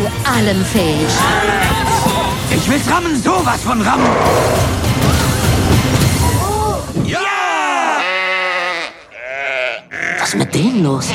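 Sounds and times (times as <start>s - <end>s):
speech: 0.3s - 1.9s, 2.5s - 5.4s, 10.2s - 11.1s
noisy commotion: 0.6s - 7.2s
sheep bleating: 1.0s - 2.4s, 7.8s - 11.1s.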